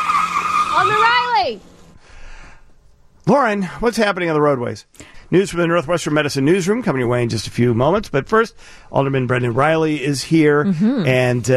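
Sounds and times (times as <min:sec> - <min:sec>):
car skidding with loud sustained tire squeal: 0:00.0 - 0:01.6
noise: 0:00.0 - 0:11.5
speech: 0:00.8 - 0:01.7, 0:03.3 - 0:11.5.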